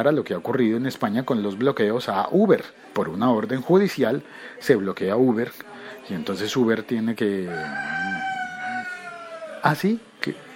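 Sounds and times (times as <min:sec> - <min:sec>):
speech: 0:00.0 - 0:08.3, 0:09.6 - 0:10.5
rooster crowing: 0:07.4 - 0:09.8.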